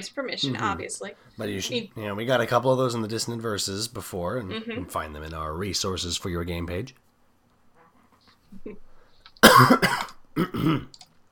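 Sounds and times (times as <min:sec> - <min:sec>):
speech: 0:00.0 - 0:07.0, 0:08.5 - 0:08.9, 0:09.5 - 0:11.0
loud harsh coughs: 0:09.4 - 0:10.9.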